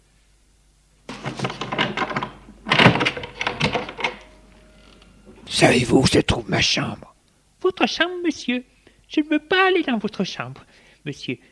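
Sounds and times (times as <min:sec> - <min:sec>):
loud bang of wood and metal: 0:01.1 - 0:04.6
rattling and clattering: 0:01.1 - 0:05.5
door latch clacking as door opens: 0:01.3 - 0:04.4
speech: 0:05.5 - 0:11.5.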